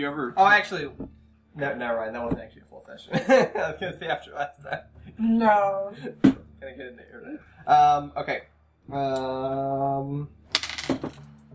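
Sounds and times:
speech: 0.0s - 1.0s, 1.6s - 10.4s
laughter: 3.1s - 4.8s
two dice clattering across a hard tabletop: 10.5s - 11.5s.

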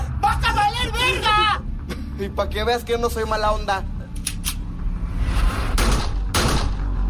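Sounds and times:
dense rumbling background: 0.0s - 7.0s
speech: 2.2s - 3.9s
loud sharp gunshots: 5.8s - 7.0s.

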